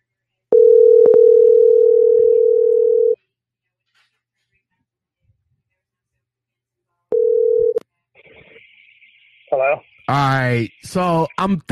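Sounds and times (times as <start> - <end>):
loud steady telephone dial tone: 0.5 - 3.2, 7.2 - 7.8
speech: 9.6 - 11.7.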